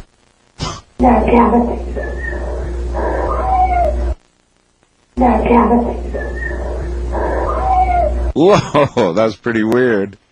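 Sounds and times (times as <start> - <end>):
steady low hum: 0.0 - 8.4
speech: 1.0 - 2.2, 5.2 - 6.4, 8.4 - 10.2
cat meowing: 3.0 - 4.2, 7.2 - 8.2.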